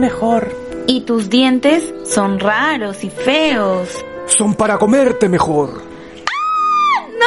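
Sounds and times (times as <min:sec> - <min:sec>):
speech: 0:00.0 - 0:05.9
loud high-pitched screaming: 0:06.2 - 0:07.1.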